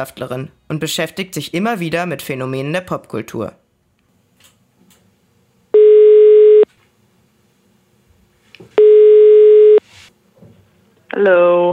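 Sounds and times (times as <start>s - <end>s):
speech: 0.0s - 3.6s, 11.2s - 11.7s
telephone tone while a call is placed: 5.8s - 6.7s, 8.8s - 9.8s.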